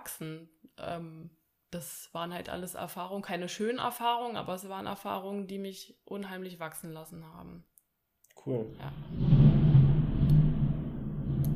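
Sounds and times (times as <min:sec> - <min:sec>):
speech: 0:00.0 - 0:07.7, 0:08.4 - 0:09.5
low continuous rumble: 0:08.6 - 0:11.5.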